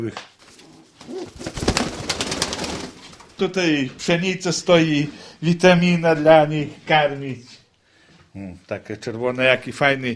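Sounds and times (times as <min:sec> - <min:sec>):
speech: 0:00.0 - 0:00.3, 0:01.0 - 0:02.0, 0:03.4 - 0:07.6, 0:08.4 - 0:10.1
pigeons cooing in a modern metal-clad pigeon loft: 0:00.7 - 0:01.5.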